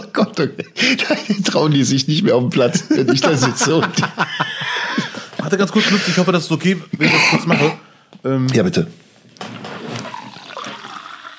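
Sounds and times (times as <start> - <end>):
speech: 0.2 - 4.4, 5.5 - 9.0
laughter: 2.6 - 6.3
person sipping and swallowing water: 9.8 - 11.3.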